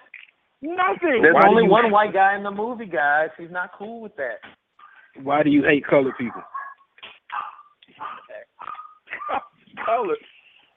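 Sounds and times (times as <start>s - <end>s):
speech: 0.6s - 4.5s, 5.2s - 6.5s, 9.3s - 10.3s
dog barking in short sharp barks: 5.9s - 10.0s.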